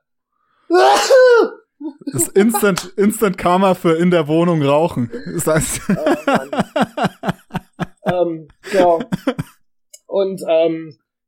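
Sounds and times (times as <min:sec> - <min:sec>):
loud sneeze: 0:00.7 - 0:01.6
speech: 0:00.7 - 0:07.1, 0:08.2 - 0:09.5, 0:10.1 - 0:11.0
laughter: 0:02.1 - 0:03.0, 0:04.9 - 0:09.6.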